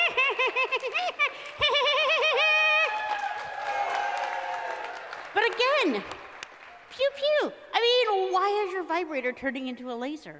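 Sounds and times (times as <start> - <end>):
voice imitating a cartoon woodpecker laugh: 0.0 - 2.9
crowd cheering and applauding: 0.0 - 7.0
speech: 5.8 - 6.2, 7.0 - 10.3.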